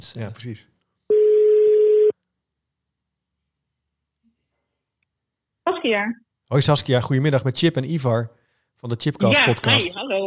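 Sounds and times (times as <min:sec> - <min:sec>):
speech: 0:00.0 - 0:00.7, 0:05.8 - 0:10.2
telephone ringback tone while a call is being placed: 0:01.1 - 0:02.1.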